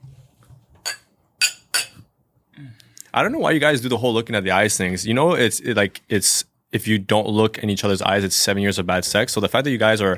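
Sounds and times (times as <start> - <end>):
glasses of apple juice clinking in a toast: 0.8 - 2.0
speech: 2.6 - 10.1.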